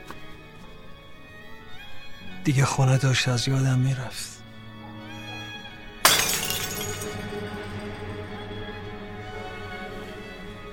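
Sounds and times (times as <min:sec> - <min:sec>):
speech: 0:02.4 - 0:04.4
glass shattering with tinkle and rattle of shards: 0:06.0 - 0:07.8.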